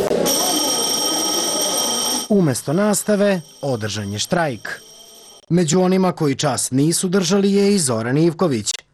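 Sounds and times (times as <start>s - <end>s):
electric school bell ringing at a school in Serbia: 0.2s - 5.5s
speech: 2.3s - 4.9s, 5.5s - 8.8s.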